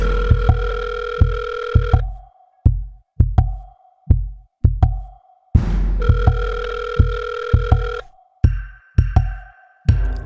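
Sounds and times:
outgoing call ringback tone: 0.0s - 2.0s, 6.0s - 8.1s
punchy repeating low drumbeat: 0.0s - 10.2s.

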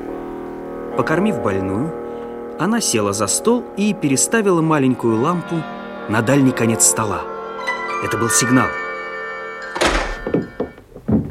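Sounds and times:
speech: 1.0s - 2.0s, 2.6s - 7.3s, 8.0s - 8.8s
door kicked open with a boot crashing: 9.8s - 11.3s
heavy thumps: 9.8s - 11.3s.

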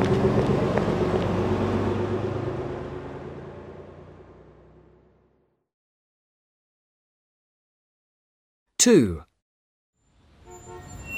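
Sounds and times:
bus engine rumbling as it pulls away: 0.0s - 5.5s
speech: 8.8s - 9.3s.

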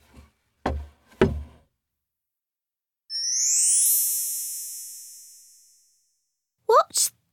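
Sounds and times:
firm knocks on a door: 0.6s - 1.6s
bright shimmering chime: 3.1s - 6.2s.

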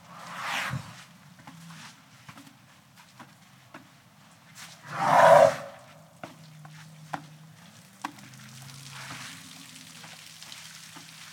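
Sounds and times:
elephant snorting: 4.8s - 5.9s.

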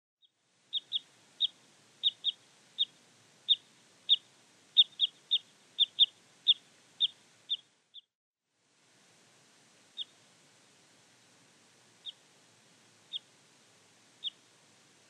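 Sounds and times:
parrot crossbill Loxia pytyopsittacus calling: 0.7s - 8.1s, 12.0s - 12.2s, 13.1s - 13.3s, 14.2s - 14.5s.

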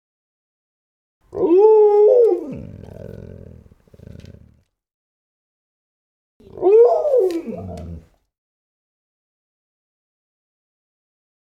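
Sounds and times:
dog howling: 1.3s - 4.2s, 6.4s - 8.1s
dog growling and snarling: 2.2s - 4.7s, 6.4s - 8.2s.

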